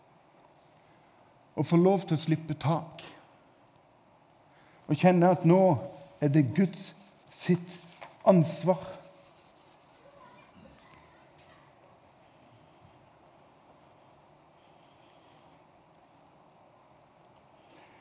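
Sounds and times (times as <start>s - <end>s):
speech: 1.6s - 3.2s, 4.9s - 9.0s
manuscript paper pages rustling and flipping: 6.6s - 11.3s.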